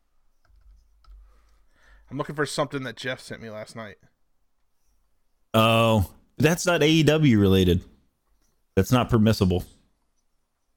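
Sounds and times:
typing on a computer keyboard: 0.4 - 1.6
speech: 2.1 - 4.1, 5.5 - 7.9, 8.8 - 9.8.

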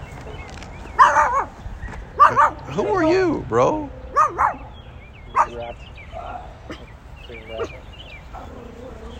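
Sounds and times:
small dog yapping in high-pitched barks: 1.0 - 1.6, 2.2 - 2.6, 4.1 - 4.7, 5.3 - 6.9, 7.6 - 9.1
speech: 2.8 - 4.5.

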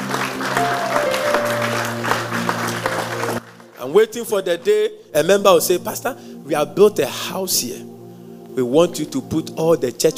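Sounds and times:
church audience clapping: 0.0 - 4.0
low sustained keyboard-like tones: 0.6 - 3.4
speech: 3.9 - 8.0, 8.6 - 10.1.

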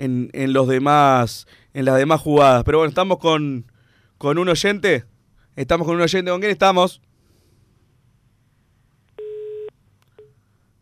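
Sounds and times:
speech: 0.0 - 7.1
telephone tone as a phone call cuts off: 9.2 - 10.4.

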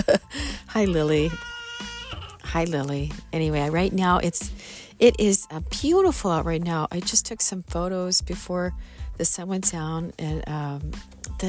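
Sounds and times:
speech: 0.8 - 1.5, 2.5 - 11.4
cat meowing: 1.2 - 2.4.

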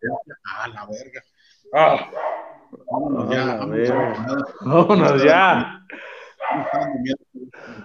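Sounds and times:
speech: 0.7 - 2.2, 3.0 - 7.3
dogs barking loud and harsh: 2.1 - 2.7, 3.8 - 4.6, 6.4 - 7.0.

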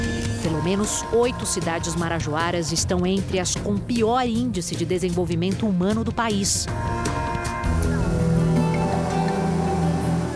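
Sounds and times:
speech: 0.5 - 7.2
faint wash of river water beneath a motorboat: 7.0 - 10.3
motorboat engine droning on a river: 7.8 - 10.3.

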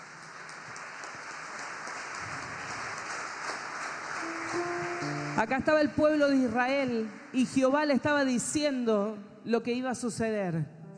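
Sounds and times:
audience applauding at a church service: 0.0 - 7.6
speech: 5.4 - 10.8.

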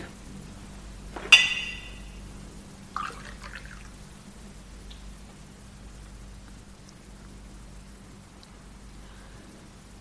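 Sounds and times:
quiet hum: 0.0 - 10.0
glass clink: 1.2 - 2.2
water being poured into a glass: 3.0 - 3.9.

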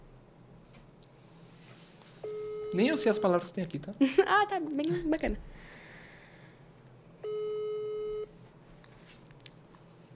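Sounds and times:
telephone ringing tone while calling someone: 2.2 - 3.4, 7.2 - 8.3
speech: 2.7 - 5.8.

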